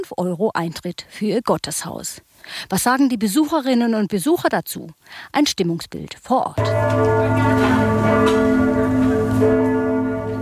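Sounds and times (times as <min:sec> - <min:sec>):
speech: 0:00.0 - 0:09.7
church bells ringing the hour: 0:06.6 - 0:10.3.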